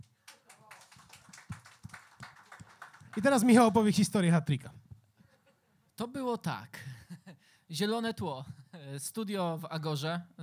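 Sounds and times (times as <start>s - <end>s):
audience applause: 0.0s - 3.9s
speech: 3.2s - 4.8s, 6.2s - 6.9s, 7.7s - 10.4s.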